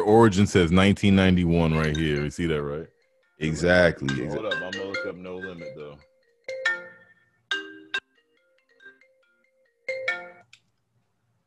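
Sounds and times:
speech: 0:00.0 - 0:06.1
phone ringtone for an incoming caller, bright melodic electronic tune: 0:01.6 - 0:10.5.

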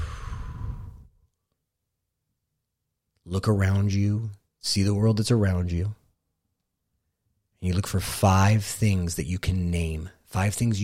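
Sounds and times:
deep breath exhale during a calming breathing exercise: 0:00.0 - 0:01.2
speech: 0:03.3 - 0:06.0, 0:07.6 - 0:10.8.

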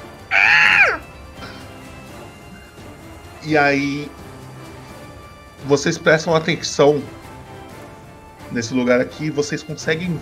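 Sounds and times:
harsh raspy creature scream: 0:00.3 - 0:01.0
speech: 0:03.4 - 0:04.2, 0:05.6 - 0:07.2, 0:08.5 - 0:10.2.

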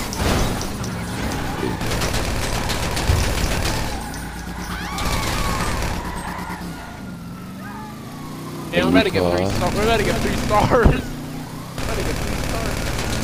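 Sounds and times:
video game gunfire bursts during a drive-by: 0:00.9 - 0:06.9, 0:09.5 - 0:13.2
speech: 0:08.8 - 0:11.1.

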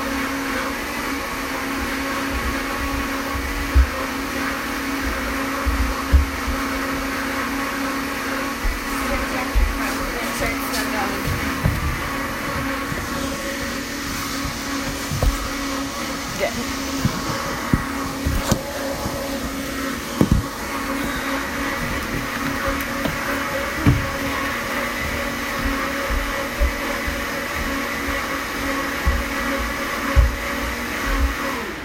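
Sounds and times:
blender whirring in a home: 0:00.0 - 0:31.8.

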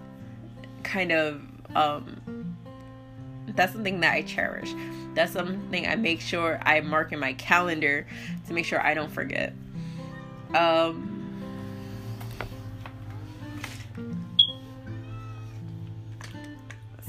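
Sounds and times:
speech: 0:00.9 - 0:02.5, 0:03.6 - 0:09.6, 0:10.5 - 0:11.1
cat meowing: 0:14.8 - 0:15.6.

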